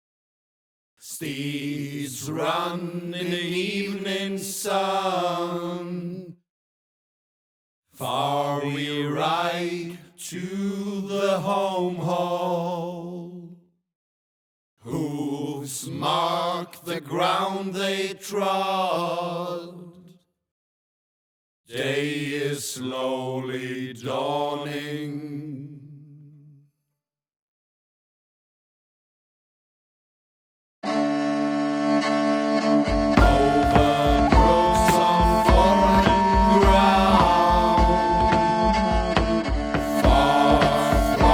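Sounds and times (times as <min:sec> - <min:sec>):
chorus singing: 0:01.1 - 0:06.0, 0:08.0 - 0:13.1, 0:14.9 - 0:19.8, 0:21.7 - 0:25.7, 0:30.8 - 0:41.3
flute: 0:30.8 - 0:41.3
tagelharpa: 0:32.8 - 0:41.3
drum: 0:33.2 - 0:41.3.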